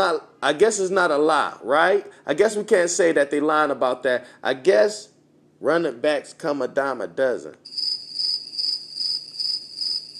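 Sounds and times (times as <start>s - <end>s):
speech: 0.0s - 7.9s
crickets chirping in a high shrill trill: 7.6s - 10.1s.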